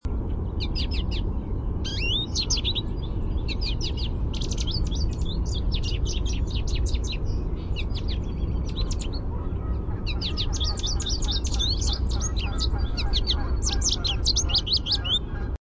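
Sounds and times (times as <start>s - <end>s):
American Goldfinch contact song: 0.3s - 15.6s.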